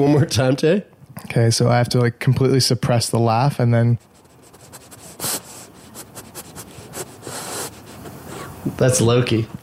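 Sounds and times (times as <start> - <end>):
speech: 0.0 - 4.1, 8.8 - 9.6
dog snuffling and rubbing against the microphone: 4.0 - 8.8.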